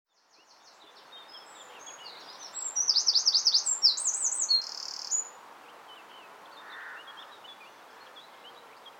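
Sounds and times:
faint background hiss: 0:00.1 - 0:08.9
Eurasian wren Troglodytes troglodytes giving a high rapid trilled phrase: 0:02.5 - 0:05.3.

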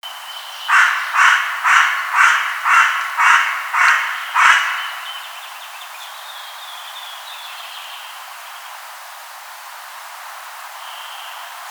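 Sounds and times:
carrion crow Corvus corone giving harsh hoarse caws: 0:00.7 - 0:05.4.

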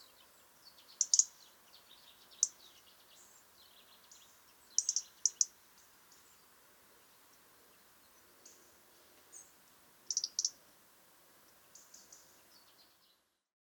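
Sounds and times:
European robin Erithacus rubecula twittering: 0:00.0 - 0:06.5, 0:10.1 - 0:10.6, 0:11.5 - 0:13.0
faint background rustle: 0:00.0 - 0:13.4.

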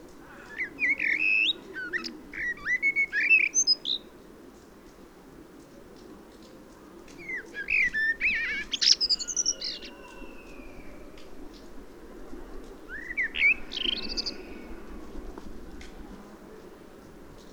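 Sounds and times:
common blackbird Turdus merula singing: 0:00.2 - 0:04.1, 0:07.2 - 0:11.0, 0:12.9 - 0:14.7.

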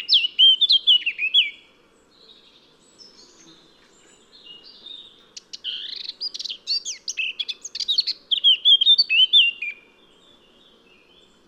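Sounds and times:
Sylvia atricapilla singing: 0:00.0 - 0:01.6, 0:04.4 - 0:10.4.

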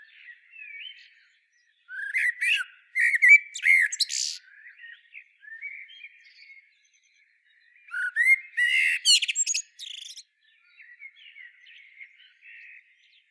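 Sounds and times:
common blackbird Turdus merula singing: 0:00.0 - 0:13.2
faint chirps from other birds: 0:00.0 - 0:13.2.

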